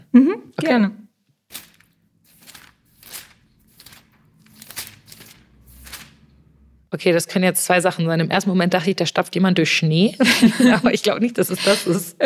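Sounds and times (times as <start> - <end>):
speech: 0.2 - 1.0, 6.9 - 12.2
paper pages turning: 1.4 - 6.4
laughter: 10.2 - 12.2.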